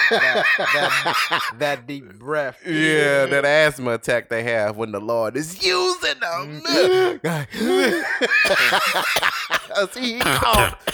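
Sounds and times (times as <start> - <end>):
people chuckling and laughing: 0.0 - 1.8, 6.9 - 10.7
speech: 0.1 - 10.9
man giving short rough coughs: 6.7 - 10.9.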